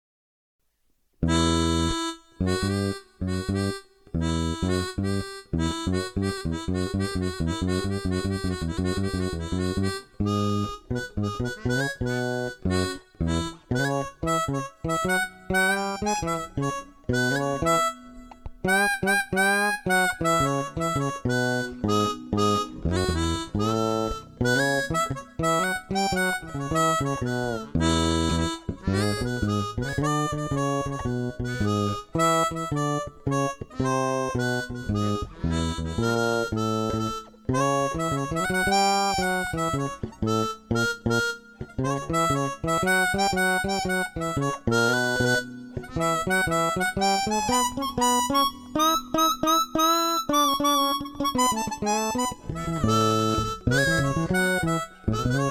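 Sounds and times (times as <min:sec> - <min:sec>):
bass: 0:01.2 - 0:55.4
harmonica: 0:01.2 - 0:55.4.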